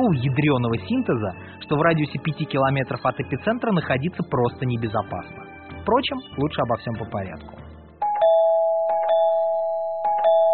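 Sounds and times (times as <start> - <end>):
speech: 0.0 - 7.6
electronic doorbell chiming two-tone ding-dong: 8.0 - 10.5.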